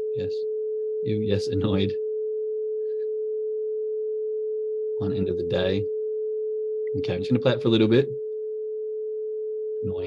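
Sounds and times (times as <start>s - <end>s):
pure electronic test tone: 0.0s - 10.0s
speech: 0.2s - 2.0s, 5.0s - 6.0s, 6.9s - 8.2s, 9.8s - 10.0s.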